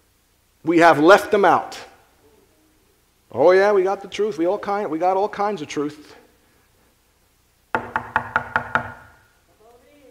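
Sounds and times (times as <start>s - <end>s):
speech: 0.6s - 1.9s, 3.3s - 6.2s
loud knocking on a wooden door: 7.7s - 9.2s.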